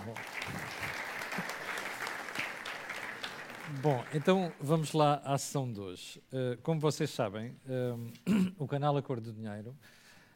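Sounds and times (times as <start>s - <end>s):
audience applause: 0.0s - 5.0s
speech: 0.1s - 0.6s, 3.8s - 10.0s.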